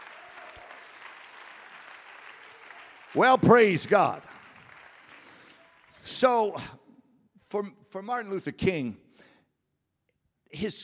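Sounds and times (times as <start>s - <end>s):
congregation clapping hands during a church service: 0.0s - 6.7s
speech: 3.1s - 4.3s, 6.1s - 6.8s, 7.5s - 9.0s, 10.5s - 10.8s.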